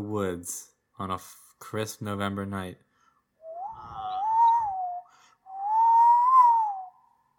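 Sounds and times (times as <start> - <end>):
speech: 0.0 - 2.9
tea kettle whistling on the stove: 3.4 - 7.2.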